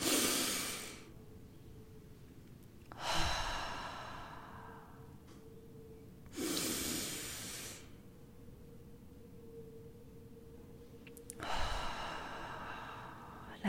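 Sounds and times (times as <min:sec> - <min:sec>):
slow deep breathing in and out: 0:00.0 - 0:01.2, 0:02.8 - 0:08.2, 0:11.2 - 0:13.6.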